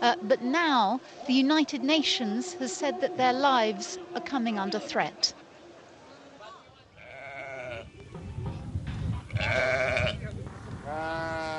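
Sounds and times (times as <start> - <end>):
speech: 0.0 - 5.4, 9.4 - 10.2
rough outdoor noise: 0.0 - 11.5
sheep and goats bleating in a pen: 7.0 - 7.9, 9.3 - 11.5.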